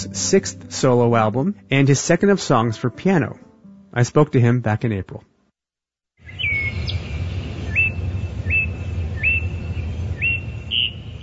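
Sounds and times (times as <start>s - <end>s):
speech: 0.0s - 5.3s
bird singing rising whistled notes: 6.2s - 11.2s.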